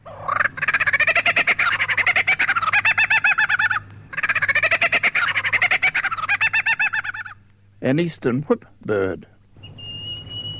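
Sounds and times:
male superb lyrebird mimicking laughing kookaburras in forest: 0.0 - 7.4
speech: 7.8 - 9.4.

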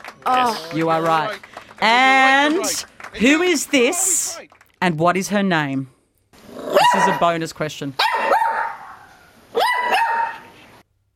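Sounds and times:
speech: 0.2 - 6.0, 7.0 - 8.0
small female cavoodle barking sharply: 6.7 - 7.3, 8.0 - 10.5.

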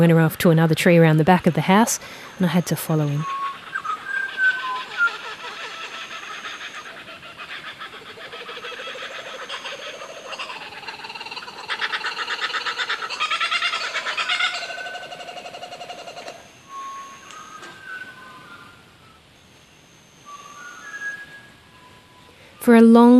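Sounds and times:
speech: 0.0 - 3.5, 22.8 - 23.1
bird singing a varied whistling song in a tree: 0.0 - 23.1
shorter fainter whistled bird calls: 2.4 - 23.1.

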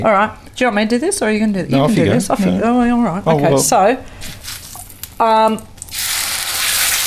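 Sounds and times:
speech: 0.0 - 4.4, 5.2 - 5.7
mushrooms sizzling in butter and oil in a heated pan: 5.9 - 7.0.

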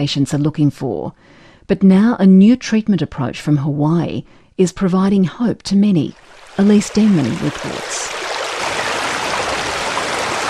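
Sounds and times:
speech: 0.0 - 8.7
rushing water of raging river rapids: 7.6 - 10.4.

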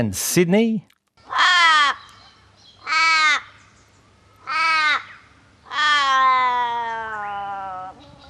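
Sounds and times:
Australian raven calling with wailing harmonic caws: 1.2 - 3.7, 4.4 - 8.2.

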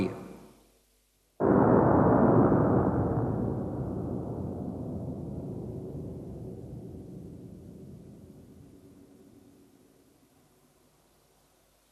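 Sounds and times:
starting pistol shot slowed down: 1.4 - 9.3.

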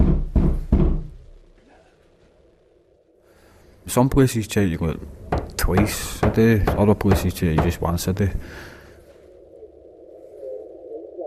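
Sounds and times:
heavy knocks on a door: 0.0 - 1.2, 5.3 - 7.8
speech: 3.9 - 8.7.

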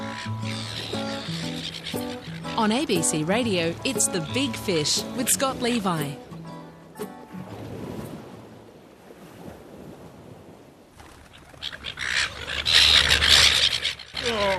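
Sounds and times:
seagulls squawking: 0.0 - 6.2, 11.2 - 14.5
speech: 2.6 - 6.3
gusty wind: 7.3 - 11.3.

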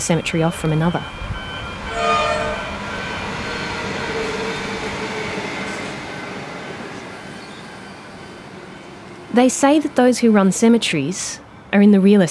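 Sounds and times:
speech: 0.0 - 1.4, 9.4 - 12.2
suburban passenger train rumbling past: 0.0 - 12.2
passenger train horn: 1.8 - 5.6.

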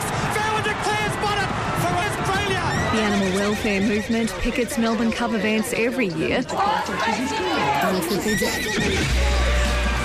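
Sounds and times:
outdoor crowd chatter at a racetrack: 0.0 - 10.0
horses neighing and whinnying at a racetrack: 2.7 - 4.5, 7.8 - 9.2
speech: 3.0 - 9.4.

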